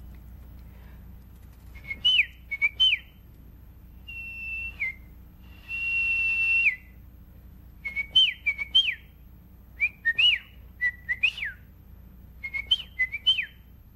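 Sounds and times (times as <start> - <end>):
person whistling bird-call imitations: 1.7 - 3.2, 4.0 - 7.0, 7.8 - 9.1, 9.8 - 11.7, 12.4 - 13.6.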